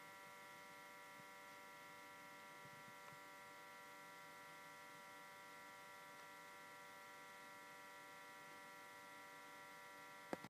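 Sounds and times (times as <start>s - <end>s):
fan whirring: 0.0s - 10.4s.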